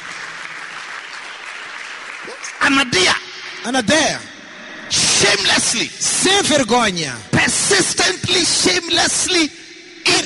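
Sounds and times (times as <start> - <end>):
audience applauding: 0.0 - 4.0
speech: 2.3 - 4.3, 5.2 - 10.2
person's voice: 2.3 - 10.2.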